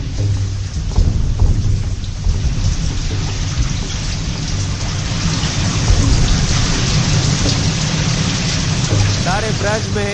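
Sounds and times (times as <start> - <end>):
deep rumbles of thunder: 0.0 - 10.1
heavy rain pouring over Braj: 0.0 - 10.1.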